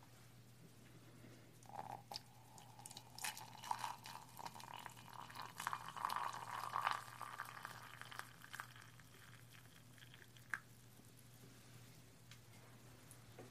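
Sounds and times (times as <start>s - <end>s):
water poured into a cup: 1.6s - 11.2s.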